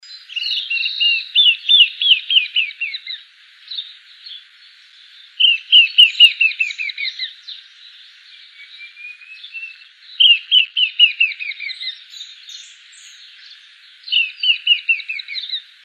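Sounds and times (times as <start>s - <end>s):
chinchero chick calling: 0.0s - 3.2s, 5.4s - 7.4s, 8.4s - 15.7s.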